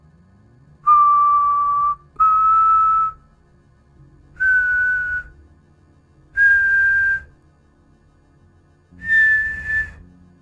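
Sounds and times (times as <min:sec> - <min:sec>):
distant man whistling long plaintive notes: 0:00.9 - 0:03.2, 0:04.4 - 0:05.3, 0:06.4 - 0:07.3, 0:09.0 - 0:10.0.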